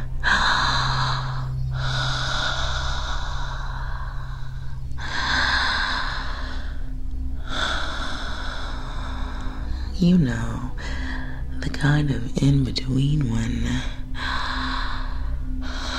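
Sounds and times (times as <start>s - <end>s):
slow deep breathing close to the microphone: 0.0s - 10.0s, 14.0s - 15.9s
low hum: 0.0s - 15.9s
speech: 10.0s - 10.9s, 11.8s - 14.0s.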